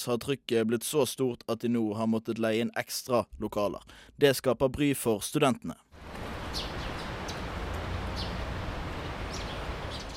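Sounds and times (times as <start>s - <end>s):
speech: 0.0s - 6.7s
faint steady outdoor noise: 0.0s - 10.1s
high bird chirps: 6.4s - 7.5s, 8.1s - 8.5s, 9.1s - 10.1s.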